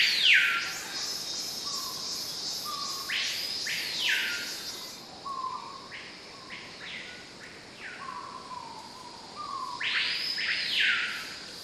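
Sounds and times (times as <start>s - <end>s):
cicadas in a forest: 0.0s - 11.6s.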